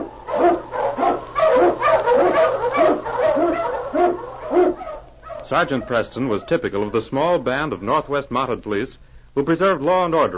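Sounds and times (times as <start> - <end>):
husky sled dogs barking and yipping in storm and snow in the Yukon: 0.0 - 6.9
faint low hum: 0.0 - 10.3
speech: 5.5 - 10.3.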